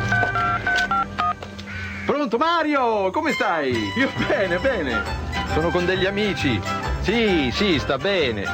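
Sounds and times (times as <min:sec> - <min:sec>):
touch-tone phone keypad beeps: 0:00.1 - 0:01.4
speech: 0:02.2 - 0:08.5.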